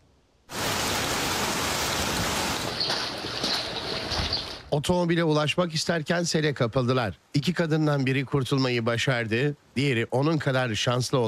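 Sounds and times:
heavy downpour rain: 0.5s - 4.7s
speech: 4.7s - 11.2s.

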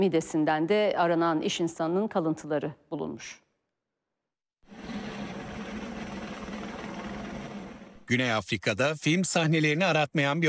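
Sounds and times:
speech: 0.0s - 3.4s, 8.1s - 10.4s
helicopter roar lifting a crocodile out of the Komati River in South Africa: 4.7s - 8.4s.

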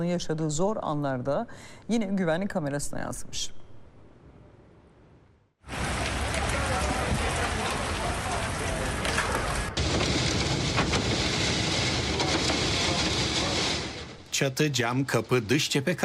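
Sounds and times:
speech: 0.0s - 3.6s, 14.4s - 16.0s
heavy rain and violent windstorm roaring: 5.6s - 16.0s.

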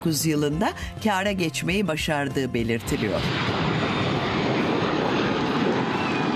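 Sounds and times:
speech: 0.0s - 3.6s
Boeing 747 jumbo jet airliner roaring in flight: 2.8s - 6.3s.

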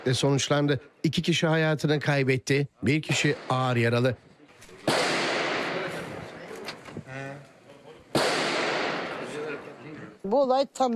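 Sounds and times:
speech: 0.0s - 4.3s, 10.3s - 10.9s
gunshots during a landlord-tenant quarrel in Istanbul: 3.1s - 4.1s, 4.7s - 6.6s, 8.1s - 9.8s.

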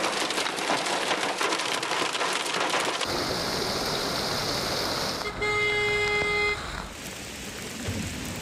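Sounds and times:
heavy afternoon downpour over city streets with flooded roads: 0.0s - 8.3s
sustained car horn blast: 5.2s - 6.9s.

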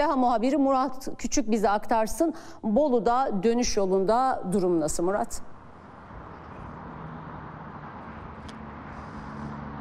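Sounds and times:
speech: 0.0s - 5.5s
motorway traffic rushing past: 1.8s - 9.7s
sharper vehicle swish: 5.8s - 9.7s.

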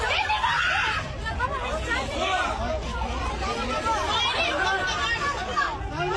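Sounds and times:
passengers shouting and screaming in panic on a sinking ship: 0.0s - 1.3s
frantic chatter of passengers: 0.0s - 6.1s.

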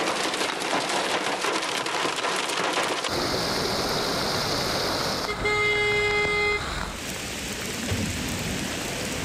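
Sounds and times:
heavy rain from a sudden afternoon downpour on flooded streets in Ankara Turkey: 0.0s - 9.2s
traffic noise in Ankara Turkey: 2.6s - 9.2s
car horn honking: 5.2s - 7.0s.

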